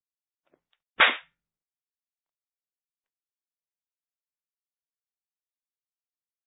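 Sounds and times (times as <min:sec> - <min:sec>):
sharp open-hand slap across the face: 0:01.0 - 0:01.3.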